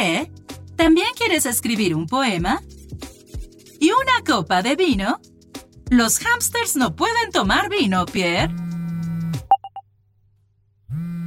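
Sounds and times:
speech: 0:00.2 - 0:02.7, 0:03.8 - 0:05.3, 0:05.9 - 0:08.6
phone ringing with short bright beeps: 0:09.5 - 0:09.8.

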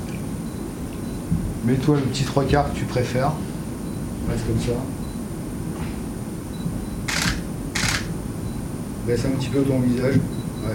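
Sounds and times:
low hum: 0:00.0 - 0:10.7
speech: 0:01.6 - 0:03.5, 0:04.2 - 0:05.0, 0:09.0 - 0:10.7
camera shutter clicks during a portrait photo shoot: 0:07.1 - 0:08.1.

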